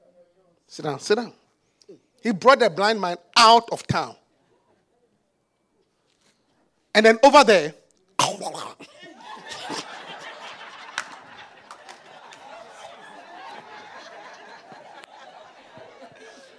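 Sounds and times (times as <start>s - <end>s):
speech: 0.7s - 4.2s, 7.0s - 7.8s
person loudly clearing throat to spit: 8.2s - 9.0s
laughter: 8.5s - 16.5s.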